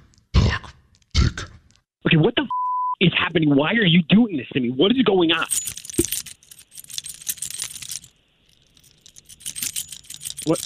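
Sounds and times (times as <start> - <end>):
speech: 2.1 - 5.8, 10.4 - 10.6
keys jingling out front of a house: 5.4 - 10.6.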